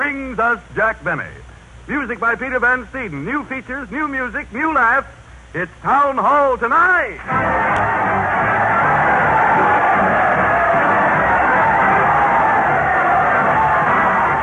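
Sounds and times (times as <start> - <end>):
speech: 0.1 - 7.9
large crowd roaring and cheering: 7.2 - 14.4.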